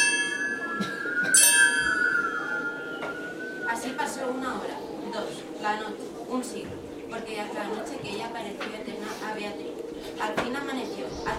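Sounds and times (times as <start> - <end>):
church bells tolling: 0.0 - 4.4
speech: 4.2 - 11.3.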